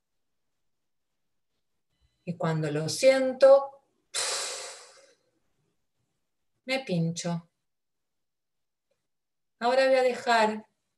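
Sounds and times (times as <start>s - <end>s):
speech: 2.3s - 4.2s, 6.7s - 7.5s, 9.6s - 10.7s
deep inhale through the nose: 4.2s - 5.2s.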